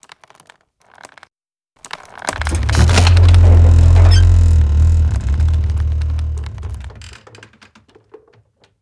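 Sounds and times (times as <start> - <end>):
windmill engaging: 2.3 - 7.2.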